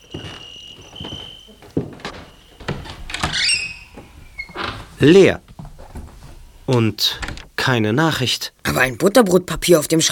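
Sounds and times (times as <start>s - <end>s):
steady high chirp of crickets: 0.0s - 4.0s
unlocked door opening: 0.0s - 6.1s, 6.7s - 7.6s
speech: 5.0s - 5.4s, 6.7s - 10.0s.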